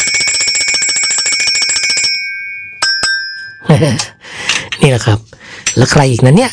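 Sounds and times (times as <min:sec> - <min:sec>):
small bell ringing: 0:00.0 - 0:04.2
speech: 0:03.8 - 0:04.2, 0:04.8 - 0:06.5.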